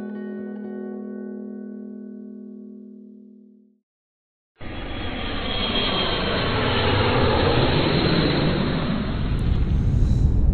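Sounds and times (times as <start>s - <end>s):
airplane engines roaring after takeoff: 4.6s - 10.5s
brief low hum: 4.6s - 10.5s.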